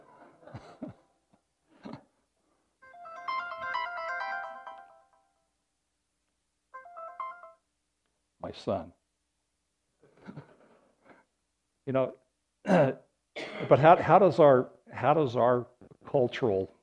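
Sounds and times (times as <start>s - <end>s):
person coughing or clearing throat: 0.4s - 1.0s, 1.8s - 2.1s, 10.2s - 10.7s, 12.7s - 14.2s
cell phone ringtone with a bright melodic electronic tune: 2.8s - 5.4s, 6.8s - 7.7s
speech: 8.5s - 9.0s, 11.9s - 13.0s, 13.6s - 16.8s.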